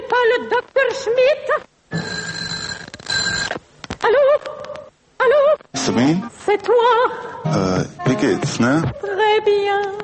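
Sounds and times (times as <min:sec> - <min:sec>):
speech: 0:00.2 - 0:01.7, 0:05.9 - 0:10.0
warbling telephone bell ringing in a sound composition: 0:01.9 - 0:03.6.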